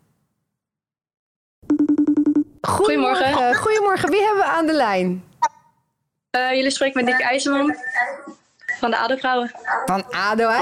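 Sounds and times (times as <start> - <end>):
telephone ringing tone on an outgoing call: 1.6 - 2.6
speech: 2.7 - 5.3, 6.3 - 8.2, 8.8 - 10.6.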